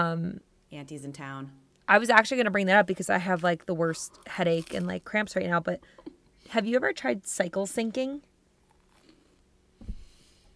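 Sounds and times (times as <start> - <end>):
speech: 0.0 - 8.3
person chewing food: 8.6 - 9.4.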